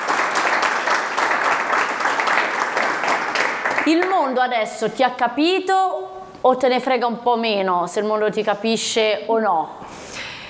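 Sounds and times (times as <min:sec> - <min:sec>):
applause: 0:00.0 - 0:04.4
speech: 0:03.9 - 0:10.2.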